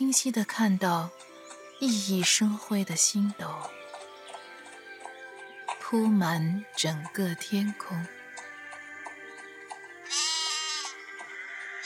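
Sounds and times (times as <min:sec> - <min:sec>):
speech: 0:00.0 - 0:03.8, 0:05.9 - 0:08.2
flock of sheep bleating as they are brought into their pen: 0:10.0 - 0:11.0.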